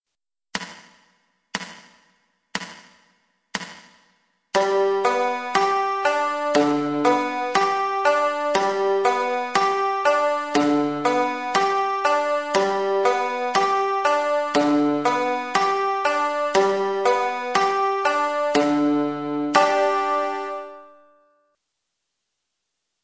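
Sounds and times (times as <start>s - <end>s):
banjo picked with alternating thumb: 4.6s - 20.9s.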